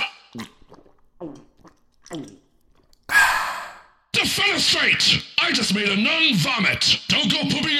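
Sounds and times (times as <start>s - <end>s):
soft breathy mouthy sounds: 0.0s - 4.1s
speech: 0.4s - 0.6s, 2.1s - 2.4s, 4.6s - 7.7s.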